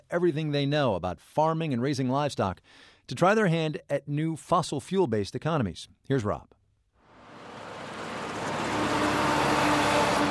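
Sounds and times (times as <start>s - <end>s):
speech: 0.1s - 6.6s
faint engine whine: 7.0s - 10.2s
heavy coal trucks roaring past: 7.1s - 10.2s.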